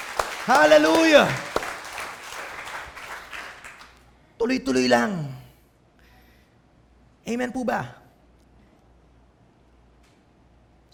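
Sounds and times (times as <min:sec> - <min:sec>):
church congregation applauding during a sermon: 0:00.0 - 0:04.1
speech: 0:00.5 - 0:01.4, 0:04.4 - 0:05.4, 0:07.3 - 0:08.0.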